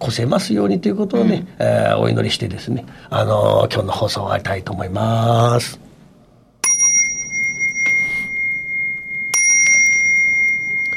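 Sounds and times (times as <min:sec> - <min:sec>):
speech: 0:00.1 - 0:05.8
bell ringing: 0:06.6 - 0:10.9.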